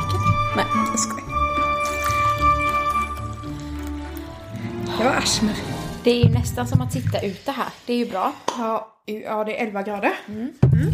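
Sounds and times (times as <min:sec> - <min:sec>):
coffee poured into a cup: 0:00.0 - 0:05.0
speech: 0:00.6 - 0:01.2, 0:05.2 - 0:10.9.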